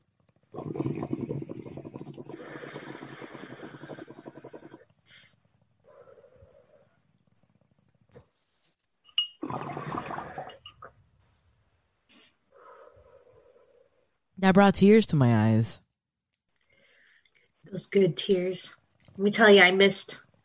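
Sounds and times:
bong water bubbling: 0.1 - 5.0, 9.4 - 11.0
speech: 14.4 - 15.8, 17.8 - 20.2.

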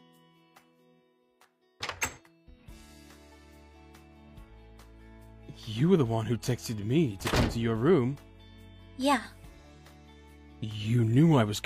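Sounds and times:
door clunking open: 1.8 - 2.2, 7.2 - 7.6
door latch rattling: 1.8 - 2.2, 7.2 - 7.6
speech: 5.6 - 8.3, 9.0 - 9.4, 10.6 - 11.6.

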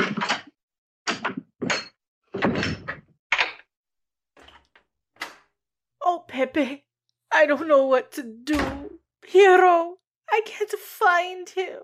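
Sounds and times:
door being opened: 1.1 - 3.7, 4.4 - 5.5, 8.5 - 9.0
speech: 6.4 - 11.8.

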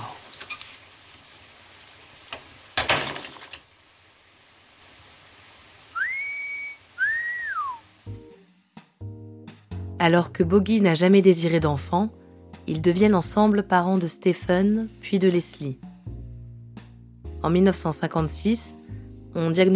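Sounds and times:
person whistling: 6.0 - 7.8
speech: 10.0 - 15.8, 17.4 - 18.8, 19.4 - 19.7.

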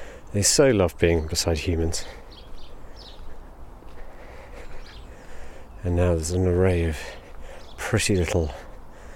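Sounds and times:
house sparrows chirping around buildings: 0.0 - 9.1
speech: 0.3 - 2.2, 5.8 - 7.2, 7.9 - 8.6.

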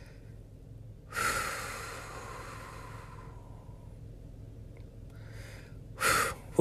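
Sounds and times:
deep breathing to calm down: 0.0 - 0.5, 1.1 - 4.0, 5.1 - 6.5.

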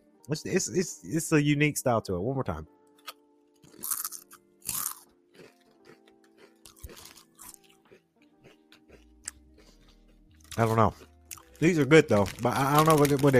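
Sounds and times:
speech: 0.2 - 2.8, 10.6 - 13.3
chewing crunchy herb-flavoured potato chips: 3.0 - 13.3.

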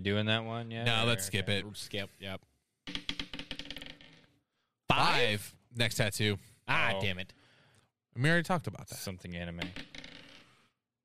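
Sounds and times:
speech: 0.0 - 3.0, 4.9 - 7.4, 8.2 - 9.9
dice clattering across a hard tabletop: 2.9 - 4.2, 9.6 - 10.6.

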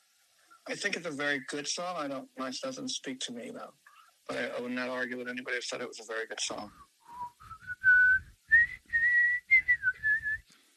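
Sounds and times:
speech: 0.7 - 6.9
whistled melody from a played song: 6.7 - 10.4.

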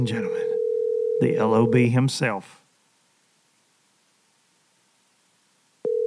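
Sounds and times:
speech: 0.0 - 0.4, 1.2 - 2.6
electronic ringing tone of an outgoing phone call: 0.0 - 1.9, 5.8 - 6.0
faint steady hiss: 1.2 - 5.9.

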